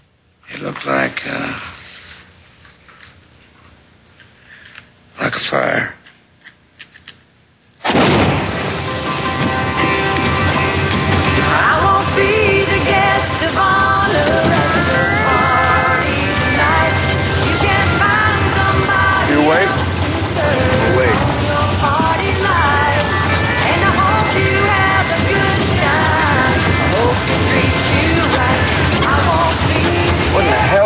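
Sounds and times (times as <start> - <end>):
speech: 0.6 - 1.7, 5.5 - 6.0
truck engine running: 8.0 - 30.8.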